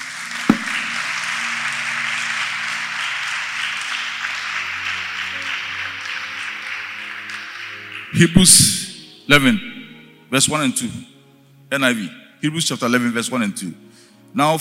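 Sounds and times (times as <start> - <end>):
audience clapping: 0.0 - 9.0
sharp thump: 0.5 - 1.0
speech: 8.2 - 9.7, 10.3 - 11.1, 11.7 - 14.5.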